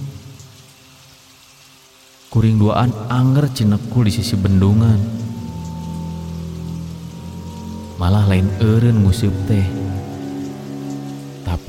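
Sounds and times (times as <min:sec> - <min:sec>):
steady rain falling in a continuous even hiss: 0:00.0 - 0:11.6
speech: 0:02.3 - 0:05.2, 0:08.0 - 0:09.9.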